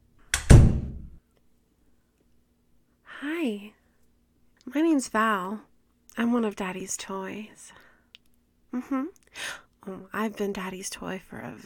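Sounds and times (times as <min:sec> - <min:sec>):
door closing shut: 0:00.3 - 0:01.2
speech: 0:03.2 - 0:03.8, 0:04.7 - 0:07.8, 0:08.7 - 0:11.6.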